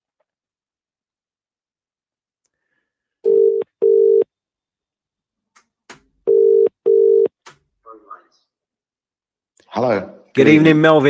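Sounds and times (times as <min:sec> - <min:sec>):
telephone line double-burst ringback tone: 0:03.3 - 0:04.2, 0:06.3 - 0:07.3
speech: 0:09.7 - 0:11.0.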